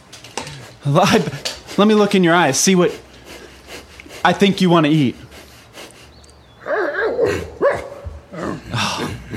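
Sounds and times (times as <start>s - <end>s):
speech: 0.8s - 3.1s, 4.2s - 5.2s
hungry camp dog barking and yipping: 6.6s - 8.3s.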